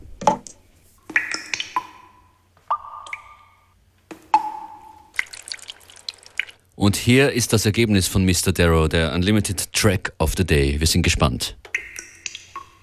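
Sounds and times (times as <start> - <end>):
water drops dripping with hollow ringing plinks: 1.1 - 6.7, 11.6 - 12.8
speech: 6.8 - 11.7.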